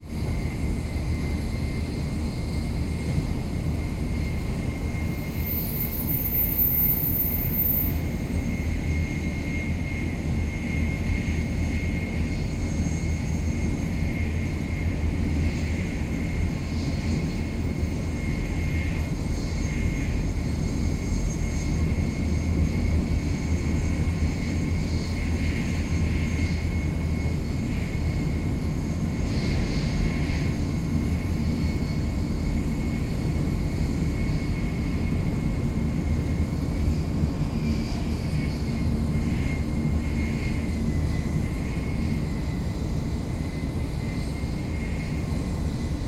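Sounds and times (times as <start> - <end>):
bullet train driving: 0.1 - 46.0.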